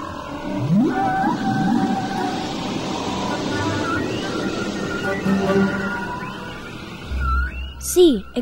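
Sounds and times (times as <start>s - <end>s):
whale calls: 0.0s - 7.9s
speech: 7.9s - 8.4s.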